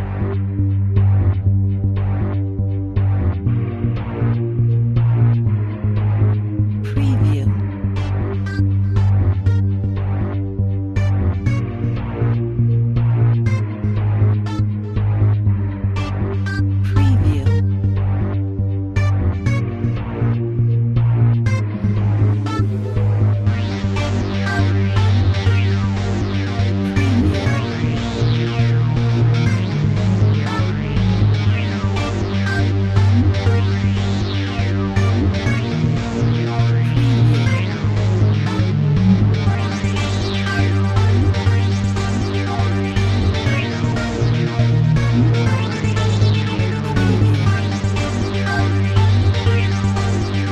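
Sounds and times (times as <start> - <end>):
spooky horror video game music: 0.1 - 50.4.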